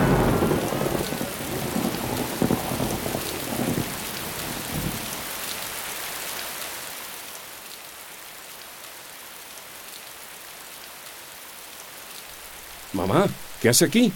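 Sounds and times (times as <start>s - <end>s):
deep rolling thunder: 0.0s - 5.0s
steady heavy rain hissing: 0.0s - 14.1s
speech: 13.0s - 14.1s.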